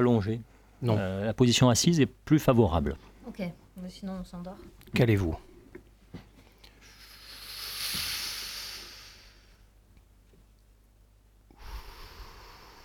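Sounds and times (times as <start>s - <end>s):
speech: 0.0s - 5.5s
slow deep breathing, inhaling and exhaling: 6.5s - 9.7s, 11.5s - 12.8s.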